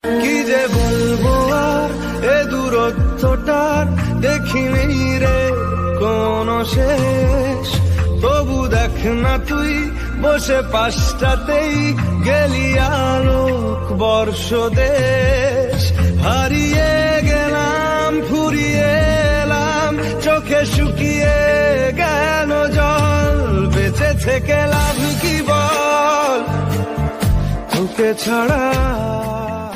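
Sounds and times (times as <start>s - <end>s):
Bengali love song: 0.0s - 29.7s.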